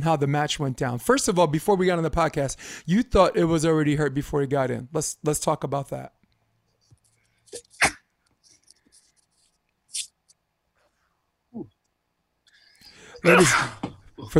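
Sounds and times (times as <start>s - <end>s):
speech: 0.0s - 6.2s, 7.5s - 7.9s, 13.2s - 14.3s
small rustling noises: 6.2s - 11.2s
stifled sneeze: 7.5s - 8.1s, 13.1s - 14.0s.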